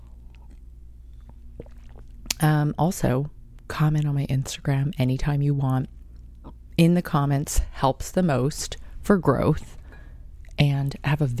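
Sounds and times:
person sipping and swallowing a matcha drink: 0.0 - 2.4
steady low electrical hum: 0.0 - 11.3
speech: 2.4 - 6.0, 6.8 - 9.8, 10.6 - 11.3.

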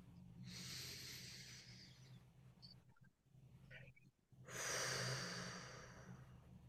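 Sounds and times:
faint low hum: 0.0 - 6.6
deep inhale through the nose and exhale through the mouth: 0.4 - 2.3, 4.4 - 6.5.

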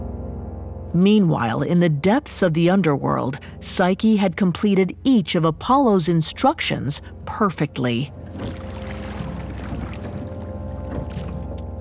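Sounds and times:
steady deep rumbling drone: 0.0 - 11.8
speech: 0.9 - 8.6
water lapping: 7.0 - 11.8
boat being rowed across water with soft splashes: 7.8 - 11.8.

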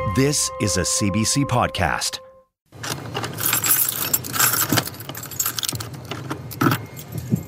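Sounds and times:
speech: 0.1 - 2.3
ring of keys working the locks of a heavy apartment door: 3.1 - 7.4.

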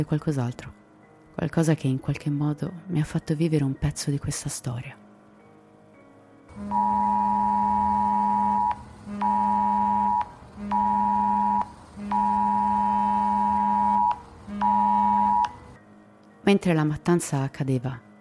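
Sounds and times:
speech: 0.0 - 0.8, 1.4 - 5.0, 6.6 - 6.8, 16.5 - 18.1
emergency alert tone from several mobile phones in a college classroom in Los Angeles: 6.6 - 15.6.

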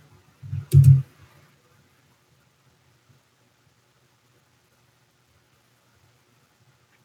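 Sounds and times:
computer keyboard clicks: 0.5 - 1.0.

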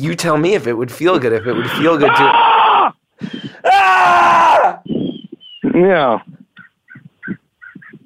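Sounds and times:
speech: 0.0 - 2.6, 3.7 - 5.0, 5.8 - 6.3
person screaming outdoors in a small nature area: 1.5 - 3.0, 3.6 - 4.8
harsh raspy bird calls: 4.8 - 8.0.

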